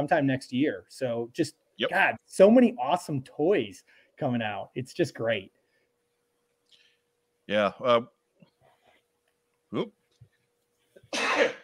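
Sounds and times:
speech: 0:00.0 - 0:05.6, 0:07.5 - 0:08.2, 0:09.7 - 0:10.0
sneeze: 0:11.1 - 0:11.6.

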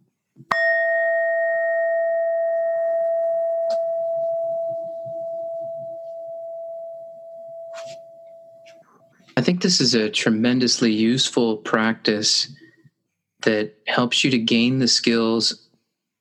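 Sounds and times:
meditation bell struck and ringing: 0:00.5 - 0:09.1
speech: 0:09.5 - 0:12.6, 0:13.5 - 0:15.6.

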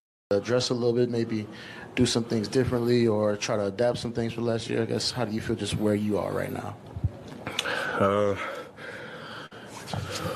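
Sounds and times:
speech: 0:00.3 - 0:07.0, 0:08.0 - 0:08.6
heavy breathing: 0:07.5 - 0:10.3.

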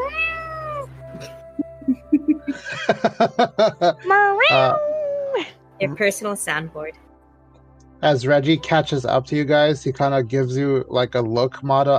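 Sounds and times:
cat meowing: 0:00.0 - 0:01.0, 0:04.4 - 0:05.0
laughter: 0:01.2 - 0:04.8
speech: 0:02.9 - 0:04.8, 0:05.4 - 0:07.0, 0:08.0 - 0:11.9.

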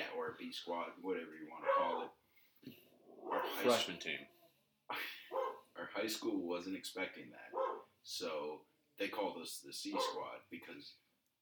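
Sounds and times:
speech: 0:00.2 - 0:04.3, 0:04.9 - 0:11.3
dog barking in high strained yelps: 0:01.5 - 0:02.2, 0:03.2 - 0:04.3, 0:05.3 - 0:05.7, 0:07.5 - 0:07.9, 0:09.9 - 0:10.3.

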